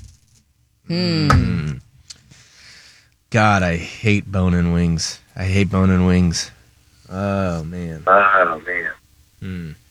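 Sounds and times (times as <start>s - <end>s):
speech: 0.9s - 1.8s, 3.3s - 9.8s
vocal knock-like strikes imitating a gavel: 1.1s - 1.8s
person making a drawn-out groaning vocal sound: 9.4s - 9.8s.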